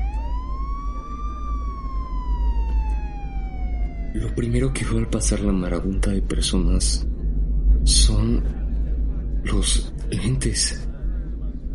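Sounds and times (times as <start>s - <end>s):
siren wailing: 0.0s - 6.1s
low rumble of traffic or engine noise: 0.0s - 11.7s
speech: 4.2s - 7.1s, 7.8s - 8.6s, 9.4s - 10.9s.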